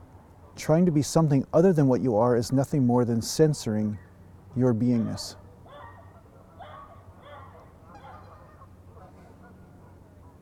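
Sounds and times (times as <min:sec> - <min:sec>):
speech: 0:00.6 - 0:05.4
geese honking: 0:04.9 - 0:10.3.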